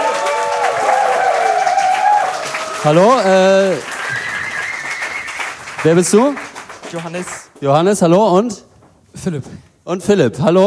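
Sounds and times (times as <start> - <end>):
studio audience applause greeting game show contestants: 0.0 - 7.6
speech: 2.8 - 4.3, 5.8 - 10.6.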